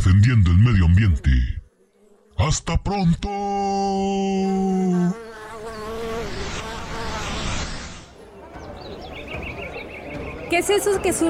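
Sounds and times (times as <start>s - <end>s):
speech: 0.0s - 1.6s, 2.4s - 6.7s, 10.5s - 11.2s
bees buzzing: 4.0s - 8.5s
fluttering tones: 5.3s - 8.2s.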